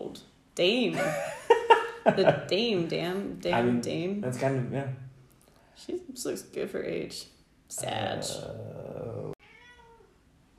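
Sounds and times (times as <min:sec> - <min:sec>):
speech: 0:00.6 - 0:05.0, 0:05.8 - 0:08.9
laughter: 0:00.9 - 0:03.8
cat meowing: 0:09.4 - 0:10.1.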